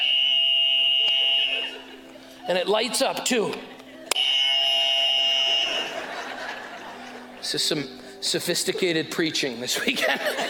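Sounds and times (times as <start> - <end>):
handheld buzzer harsh electronic tone: 0.0 - 1.8, 4.2 - 5.8
laughter: 1.1 - 2.5, 5.4 - 7.6, 9.7 - 10.4
speech: 2.5 - 3.8, 7.5 - 10.4.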